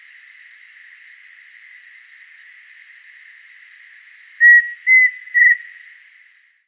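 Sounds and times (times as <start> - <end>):
constant faint hiss: 0.0 - 6.6
pheasant cuckoo Dromococcyx phasianellus whistling a three-note phrase: 4.4 - 5.7.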